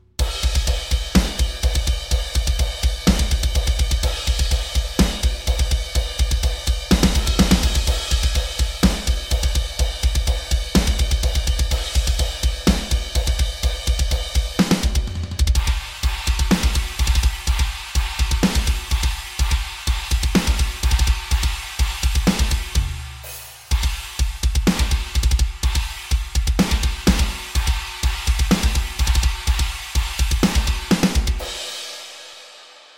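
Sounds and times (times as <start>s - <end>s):
pop drums: 0.2s - 32.9s.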